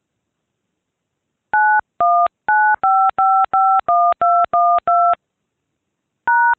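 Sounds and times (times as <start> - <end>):
touch-tone keypad beeps dialing a phone number: 1.6 - 5.2.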